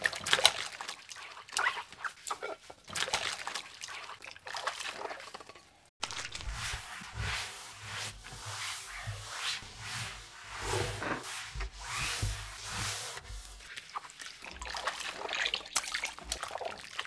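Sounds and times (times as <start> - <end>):
washing: 0.0 - 17.0.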